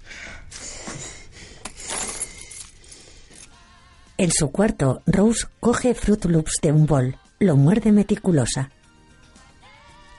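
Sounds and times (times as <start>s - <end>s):
bunch of keys jingling: 1.6s - 3.5s
speech: 4.2s - 8.8s.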